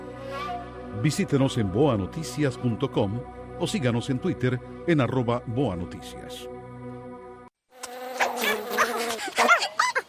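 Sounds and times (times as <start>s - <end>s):
speech: 1.0s - 6.5s
mosquito buzzing: 7.7s - 9.3s.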